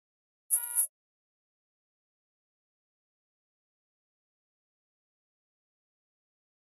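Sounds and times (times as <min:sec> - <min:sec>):
electronic horn beep: 0:00.5 - 0:00.9.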